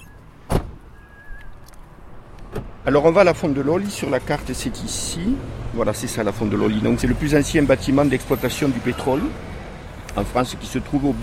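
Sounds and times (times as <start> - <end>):
car door thudding shut as someone gets out of a car: 0.4 - 0.9
speech: 2.8 - 9.5, 10.2 - 11.2.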